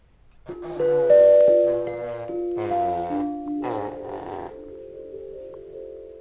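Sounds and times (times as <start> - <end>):
elephants trumpeting: 0.5 - 5.0.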